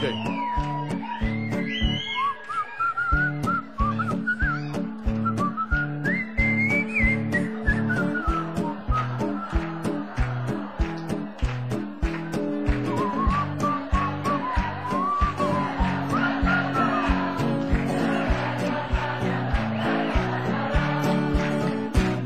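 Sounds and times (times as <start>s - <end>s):
bright whistled melody of a cover song: 0.0s - 9.9s, 12.8s - 17.1s
laughter: 7.2s - 22.2s.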